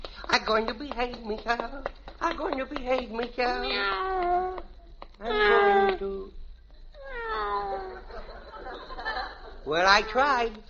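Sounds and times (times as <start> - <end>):
speech: 0.4 - 6.4, 9.7 - 10.6
cat meowing: 3.6 - 6.1, 7.0 - 8.0
laughter: 7.6 - 10.1.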